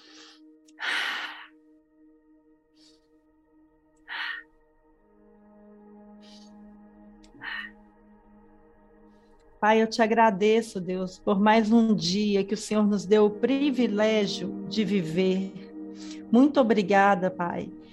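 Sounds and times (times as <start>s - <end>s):
deep breaths in a guided breathing exercise: 0.0s - 1.6s, 2.6s - 3.4s, 4.0s - 4.6s, 5.9s - 8.0s
soft steady music tones: 0.0s - 17.9s
speech: 9.6s - 15.6s, 16.3s - 17.8s.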